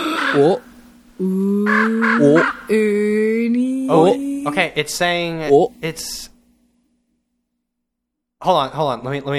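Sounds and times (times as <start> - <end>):
person imitating a crow with harsh nasal caws: 0.0 - 4.7
steady droning hum: 0.0 - 7.5
speech: 0.3 - 6.3, 8.4 - 9.3.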